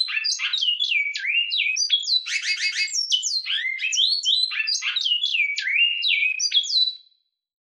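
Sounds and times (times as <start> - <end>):
great-billed seed-finch singing batuque song: 0.0 - 7.1.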